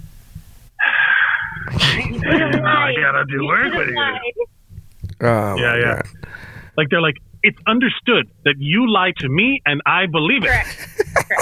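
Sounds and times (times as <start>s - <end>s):
laughter: 1.0s - 4.4s, 10.4s - 11.4s
speech: 2.6s - 4.5s, 5.2s - 11.4s
person taking a sharp drawn-out inhale: 6.2s - 6.8s.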